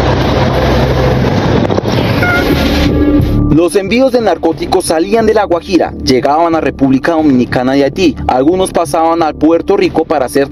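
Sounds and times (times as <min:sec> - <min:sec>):
heavy wind buffeting the microphone: 0:00.0 - 0:03.0
go-fast speedboat engine droning on water: 0:00.0 - 0:03.5
speech: 0:03.6 - 0:10.5.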